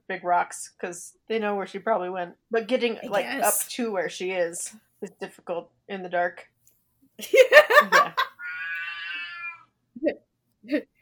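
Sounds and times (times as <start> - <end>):
speech: 0.1 - 6.5, 7.2 - 8.2, 10.0 - 10.9
laughter: 7.2 - 8.3
cat meowing: 8.4 - 9.7.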